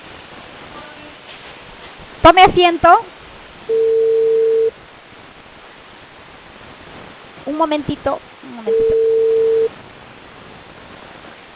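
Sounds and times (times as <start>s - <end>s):
faint telephone line hiss: 0.0s - 11.5s
speech: 2.2s - 3.9s, 7.6s - 9.2s
telephone tone during an unanswered call: 3.7s - 4.8s, 8.7s - 9.7s.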